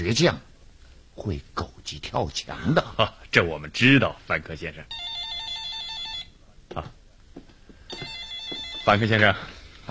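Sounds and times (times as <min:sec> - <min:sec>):
speech: 0:00.0 - 0:00.5, 0:01.2 - 0:05.2, 0:06.8 - 0:07.0, 0:08.8 - 0:09.9
telephone ringing: 0:04.9 - 0:06.4, 0:07.8 - 0:09.5.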